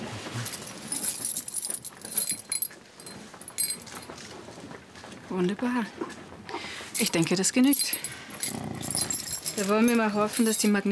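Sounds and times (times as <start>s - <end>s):
keys jangling and clinking: 0.4s - 4.1s, 7.0s - 10.9s
speech: 5.3s - 6.2s, 7.0s - 8.1s, 9.6s - 10.9s.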